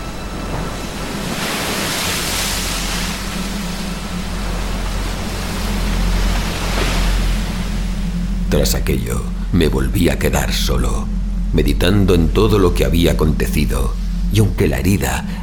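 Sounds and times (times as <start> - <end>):
sea waves breaking against breakwater rocks: 0.0 - 8.1
speech: 8.5 - 15.4.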